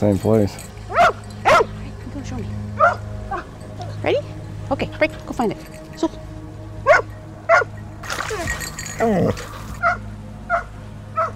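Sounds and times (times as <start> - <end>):
speech: 0.0 - 0.7, 4.0 - 6.2, 9.0 - 9.6
dog barking at water: 0.9 - 1.8, 2.8 - 3.5, 6.9 - 7.7, 9.8 - 11.3
dog yelping: 0.9 - 1.8, 2.8 - 3.6, 6.9 - 8.6, 9.8 - 11.3
water splashing: 6.9 - 10.0.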